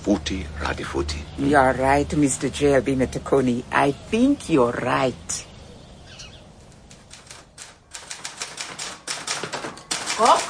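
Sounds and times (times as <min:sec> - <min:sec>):
speech: 0:00.0 - 0:05.5
brisk typing on a typewriter: 0:06.8 - 0:10.4.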